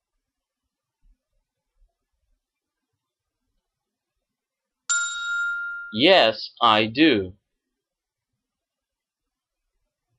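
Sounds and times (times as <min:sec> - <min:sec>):
telephone ringtone after a number is dialed: 0:04.9 - 0:06.0
speech: 0:05.9 - 0:07.4.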